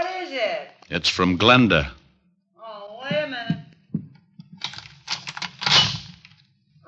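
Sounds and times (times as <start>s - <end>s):
speech: 0.2s - 2.0s
knocks and clunks: 3.0s - 4.8s
door lock of room clicking and rattling: 4.6s - 6.4s.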